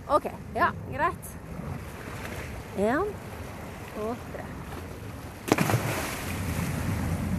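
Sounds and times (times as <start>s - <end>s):
rescue boat engine at sea: 0.0s - 7.3s
wind rumble over open water: 0.0s - 7.3s
speech: 0.1s - 1.5s, 2.8s - 3.3s, 4.0s - 4.6s
woman jumping overboard splashing into the sea: 5.4s - 6.9s.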